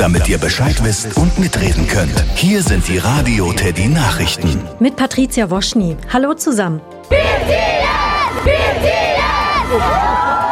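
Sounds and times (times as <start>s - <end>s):
speech: 0.0s - 9.1s, 9.7s - 10.3s
crowd of thousands of fans screaming and shouting outside a Munich stadium: 7.1s - 10.5s.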